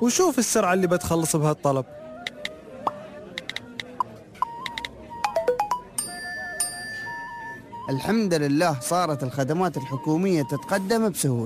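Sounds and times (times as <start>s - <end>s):
speech: 0.0s - 2.0s, 7.9s - 11.4s
phone notification chime: 5.2s - 7.5s.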